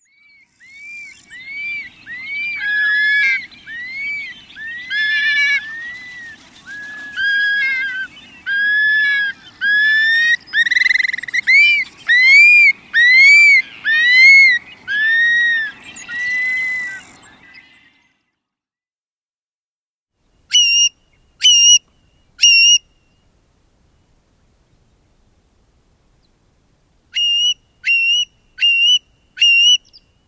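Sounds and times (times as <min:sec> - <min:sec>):
long-billed curlew calling: 0:00.0 - 0:18.0, 0:20.5 - 0:23.2, 0:27.1 - 0:30.2.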